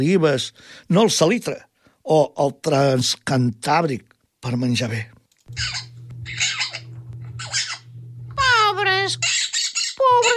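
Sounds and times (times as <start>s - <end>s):
speech: 0.0s - 6.6s, 9.0s - 9.3s, 10.1s - 10.3s
bird chirping and squeaking: 5.5s - 7.9s, 9.2s - 10.3s
steady low hum: 5.5s - 9.4s.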